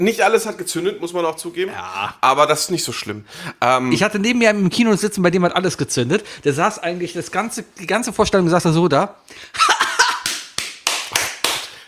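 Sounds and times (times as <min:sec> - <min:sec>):
speech: 0:00.0 - 0:09.7
laughter: 0:09.6 - 0:10.3
hand slapping thigh: 0:09.8 - 0:11.8.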